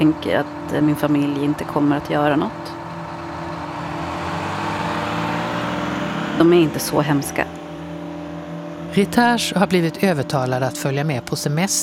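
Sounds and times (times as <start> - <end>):
speech: 0.0 - 2.8, 6.4 - 7.6, 9.0 - 11.8
bus engine drone while driving: 0.0 - 11.8.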